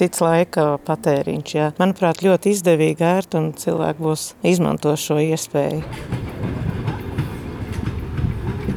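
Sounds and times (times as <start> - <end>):
speech: 0.0 - 6.6
passenger train rumbling past at Skrunda station in Latvia: 2.9 - 8.7
passenger train wheels clattering at Skrunda station in Latvia: 5.4 - 8.7.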